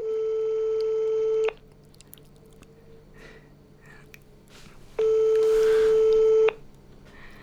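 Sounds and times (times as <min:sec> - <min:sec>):
telephone ringback tone: 0:00.0 - 0:01.5, 0:05.0 - 0:06.6.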